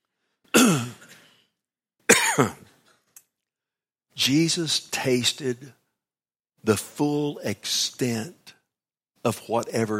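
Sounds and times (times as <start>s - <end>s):
rough throat-clearing rasp: 0.5s - 1.3s
person with allergies coughing: 0.5s - 1.4s, 2.1s - 2.8s
speech: 2.4s - 2.6s, 4.2s - 5.8s, 6.6s - 8.5s, 9.2s - 9.9s.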